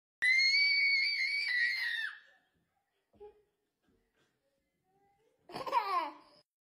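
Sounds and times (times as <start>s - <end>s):
baby screaming: 0.2s - 2.2s.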